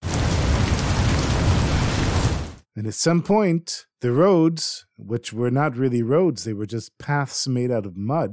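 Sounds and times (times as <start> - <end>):
heavy rain downpour with deep rumbling low end: 0.0 - 2.6
speech: 2.8 - 8.3.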